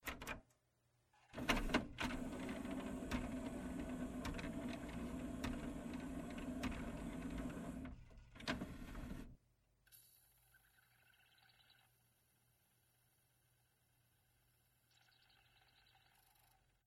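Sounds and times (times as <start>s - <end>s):
CD player sounds: 1.4s - 9.4s.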